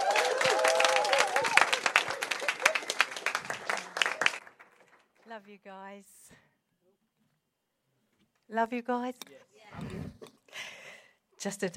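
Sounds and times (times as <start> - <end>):
people cheering: 0.0 - 4.6
crowd applause: 0.0 - 5.2
speech: 5.5 - 6.5, 8.5 - 10.2, 11.4 - 11.7.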